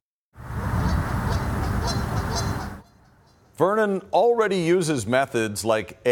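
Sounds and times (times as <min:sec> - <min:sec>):
flock of geese honking: 0:00.6 - 0:03.6
speech: 0:03.6 - 0:06.1.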